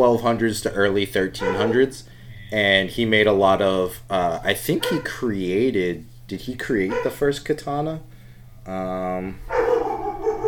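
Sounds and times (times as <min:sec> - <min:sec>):
speech: 0:00.0 - 0:08.1, 0:08.7 - 0:09.6
dog barking: 0:01.4 - 0:01.8, 0:04.8 - 0:05.1, 0:06.9 - 0:07.3, 0:09.5 - 0:10.4.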